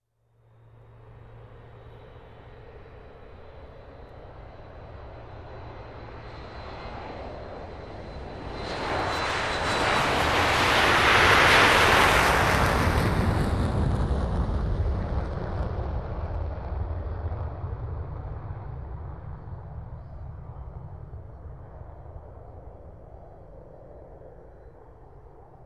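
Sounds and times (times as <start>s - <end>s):
jet aircraft flying over: 0.5s - 25.6s.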